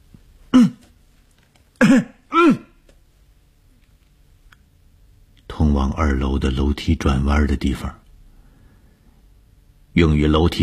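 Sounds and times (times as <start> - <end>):
man coughing harshly on a stairway in a women's dormitory: 0.5 - 0.9, 1.8 - 2.8
speech: 1.9 - 2.1, 5.8 - 8.0, 10.0 - 10.6.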